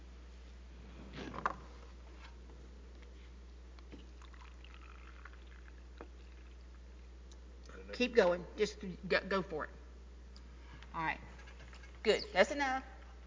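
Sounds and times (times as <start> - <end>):
low steady hum: 0.0 - 13.2
hydrogen peroxide being poured into a container: 4.0 - 6.8
speech: 8.0 - 9.8, 11.0 - 11.3, 12.0 - 12.9.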